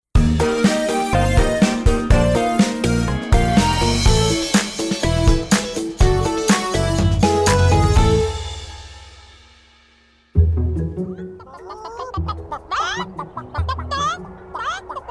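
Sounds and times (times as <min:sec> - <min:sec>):
bouncy tune: 0:00.2 - 0:09.3, 0:10.4 - 0:14.9
loud musical chord: 0:00.2 - 0:09.7
chicken clucking and chirping: 0:11.1 - 0:15.1.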